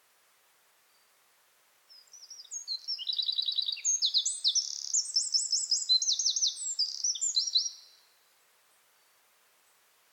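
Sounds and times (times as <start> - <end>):
Eurasian wren Troglodytes troglodytes song: 1.9 - 8.0.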